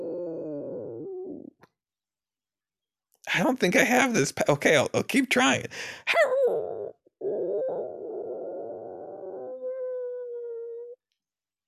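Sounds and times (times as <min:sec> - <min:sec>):
human voice imitating a puppy whimpering and howling: 0:00.0 - 0:01.5, 0:06.1 - 0:11.0
speech: 0:03.4 - 0:06.4.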